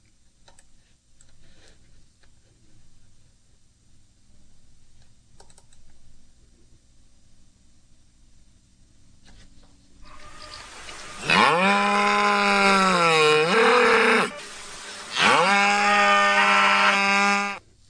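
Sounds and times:
cow mooing: 10.1s - 14.4s, 15.1s - 17.6s.

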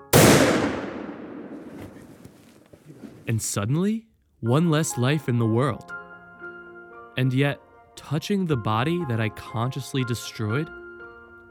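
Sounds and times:
hunting rifle shot fired in the woods: 0.0s - 2.4s
speech: 3.3s - 5.9s, 7.2s - 10.8s.

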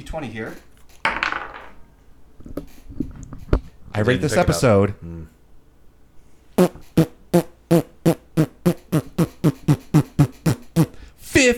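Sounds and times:
speech: 0.0s - 0.7s, 4.0s - 5.4s
squelchy armpit farts: 6.6s - 11.0s.

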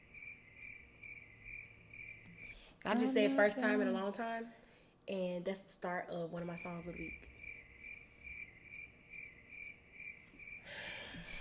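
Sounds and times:
crickets chirping: 0.0s - 2.7s, 6.8s - 11.3s
speech: 2.8s - 7.3s.

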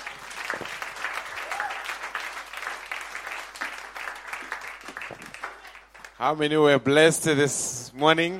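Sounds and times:
audience applause, many hands clapping: 0.0s - 6.2s
speech: 6.2s - 8.3s.

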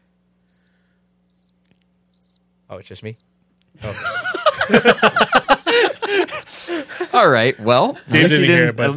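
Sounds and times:
faint low hum: 0.0s - 8.9s
high trilling cricket chirps: 0.4s - 0.7s, 1.3s - 2.4s, 3.0s - 3.2s
speech: 2.7s - 5.9s, 6.7s - 8.9s
laughter: 3.8s - 7.5s.

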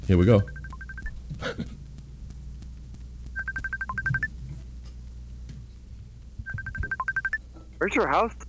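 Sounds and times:
low hum: 0.0s - 8.4s
speech: 0.1s - 0.6s, 7.8s - 8.4s
phone keypad dialing tones: 0.2s - 1.3s, 3.3s - 4.4s, 6.4s - 8.4s.

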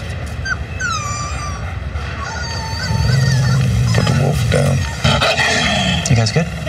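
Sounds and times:
wolf pup whining and yipping: 0.3s - 5.0s
protective mother wolf growling deeply: 1.3s - 5.9s
speech: 6.2s - 6.6s.

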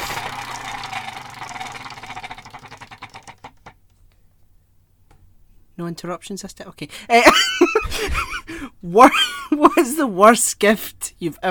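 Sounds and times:
spinning game wheel whirring and clicking: 0.0s - 3.8s
speech: 5.8s - 11.5s.

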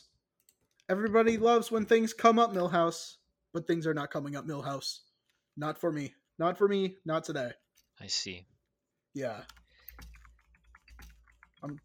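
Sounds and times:
speech: 0.9s - 8.5s, 9.2s - 9.6s, 11.6s - 11.8s
typing on a computer keyboard: 9.2s - 11.8s.

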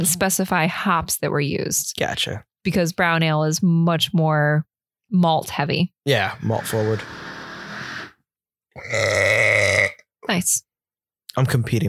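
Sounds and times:
speech: 0.0s - 7.3s, 8.8s - 9.4s, 10.3s - 10.7s, 11.4s - 11.8s
loud rough drawn-out burps: 8.8s - 10.1s.

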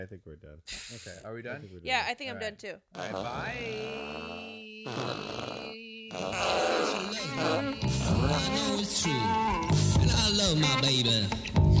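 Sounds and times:
speech: 0.0s - 11.7s
raspy sputtering fart noises: 3.0s - 8.8s.

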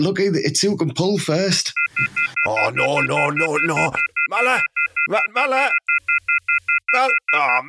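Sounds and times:
speech: 0.0s - 7.6s
phone number keyed in with dialing beeps: 1.8s - 7.6s.

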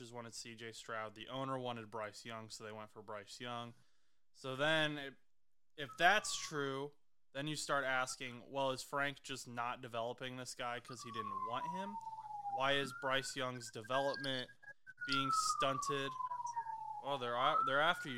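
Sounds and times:
speech: 0.1s - 3.8s, 4.4s - 5.2s, 5.8s - 16.3s, 17.0s - 18.1s
police siren wailing: 5.8s - 6.6s, 10.8s - 18.1s.

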